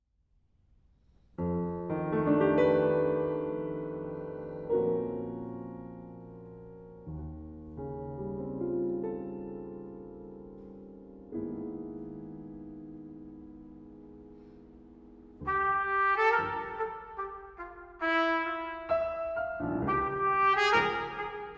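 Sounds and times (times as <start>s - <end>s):
piano: 1.0s - 21.5s
trumpet: 15.4s - 21.5s.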